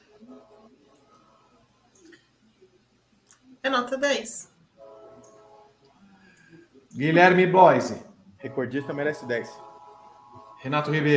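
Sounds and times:
speech: 0:03.6 - 0:04.5, 0:07.0 - 0:09.7, 0:10.6 - 0:11.1
multi-toned train horn blast: 0:04.8 - 0:05.7, 0:08.4 - 0:11.1.

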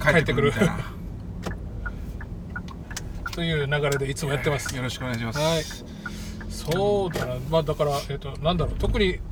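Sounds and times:
speech: 0:00.0 - 0:01.0, 0:03.4 - 0:06.0, 0:06.6 - 0:09.3
car interior road and engine drone while driving: 0:00.0 - 0:09.3
faint clicks and ticks: 0:01.4 - 0:07.5.

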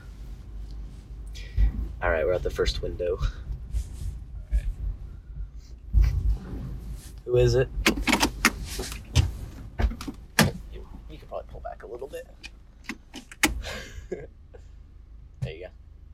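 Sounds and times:
low engine rumble: 0:00.0 - 0:16.1
speech: 0:02.0 - 0:03.5, 0:07.3 - 0:07.8
sharp knocks and handling noises: 0:07.7 - 0:11.0, 0:12.2 - 0:13.6
car door clunking open at a drive-thru window: 0:07.8 - 0:10.7, 0:12.4 - 0:13.8.

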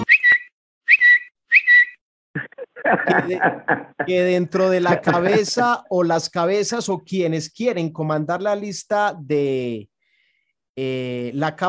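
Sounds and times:
whistled chirps imitating a little bird: 0:00.0 - 0:02.0
garbled chattery vocal sounds: 0:02.4 - 0:04.2
laughter: 0:02.4 - 0:05.7
speech: 0:02.9 - 0:09.9, 0:10.8 - 0:11.6.

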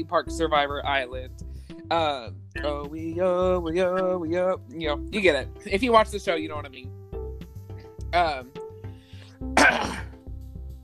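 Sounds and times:
speech: 0:00.0 - 0:07.0, 0:08.1 - 0:08.6
person coughing after water went down the wrong pipe: 0:09.6 - 0:10.2.

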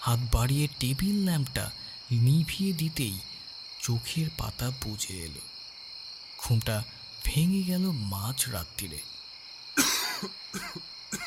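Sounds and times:
speech: 0:00.1 - 0:05.5, 0:06.4 - 0:09.2, 0:09.8 - 0:10.8
person coughing in a room at night: 0:09.8 - 0:11.2.

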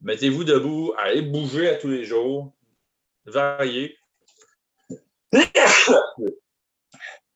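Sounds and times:
speech: 0:00.1 - 0:02.6, 0:03.2 - 0:04.0, 0:04.9 - 0:06.4
loud sneeze into the microphone: 0:05.4 - 0:06.3.

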